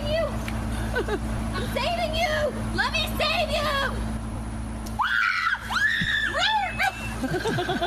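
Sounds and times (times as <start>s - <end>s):
steady hum: 0.0s - 7.8s
laughter: 0.8s - 1.3s, 6.9s - 7.8s
speech: 1.0s - 4.0s
woman screaming: 5.0s - 7.2s.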